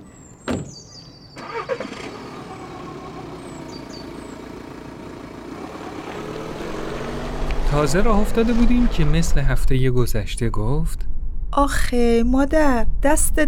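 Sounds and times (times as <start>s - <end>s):
two-year-old car engine starting: 1.4s - 10.3s
speech: 7.7s - 13.4s.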